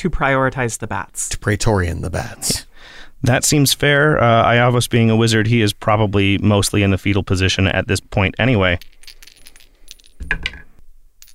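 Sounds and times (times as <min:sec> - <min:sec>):
speech: 0:00.0 - 0:09.0, 0:10.2 - 0:10.5
metal chime dice rolling and clattering: 0:08.4 - 0:11.3.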